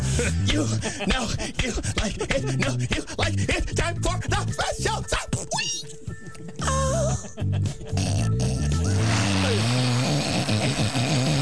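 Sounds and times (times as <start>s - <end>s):
speech: 0.2s - 6.0s, 6.6s - 8.5s
person loudly imitating snoring: 7.9s - 11.3s.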